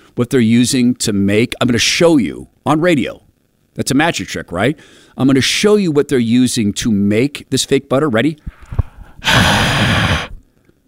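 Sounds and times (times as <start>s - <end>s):
speech: 0.2s - 3.2s, 3.8s - 10.0s
long breathy exhale of carbon dioxide from a person's mouth: 8.5s - 10.5s.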